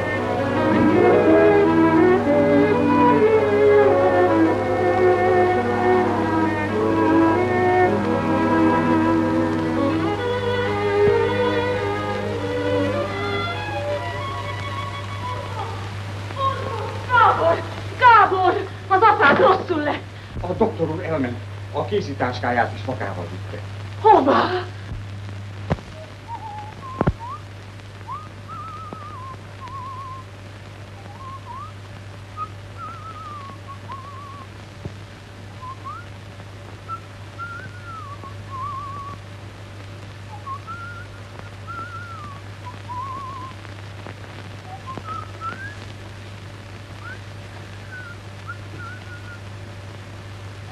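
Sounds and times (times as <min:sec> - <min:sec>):
low steady hum: 0:00.0 - 0:50.6
speech: 0:22.1 - 0:24.6
person whistling a melodic tune: 0:28.1 - 0:30.2, 0:31.1 - 0:31.7, 0:32.4 - 0:34.5, 0:35.6 - 0:36.0, 0:37.4 - 0:39.2, 0:40.4 - 0:43.5, 0:44.7 - 0:45.8, 0:47.8 - 0:49.4.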